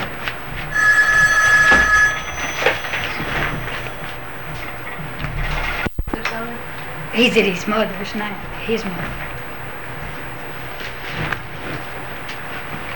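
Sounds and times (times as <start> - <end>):
low hum: 0.0 - 12.9
telephone ringing with an electronic trill: 0.7 - 4.2
speech: 7.2 - 9.3.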